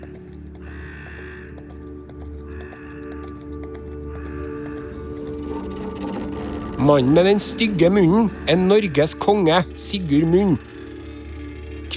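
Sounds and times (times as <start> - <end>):
horse hooves clopping as the rider moves off: 0.0 - 9.3
speech: 6.8 - 10.7.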